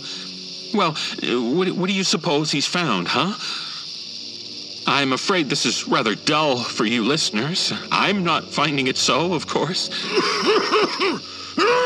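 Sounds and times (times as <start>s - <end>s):
speech: 0.7s - 3.7s, 4.9s - 11.8s
laughter: 9.8s - 11.8s
man coughing: 10.0s - 11.2s.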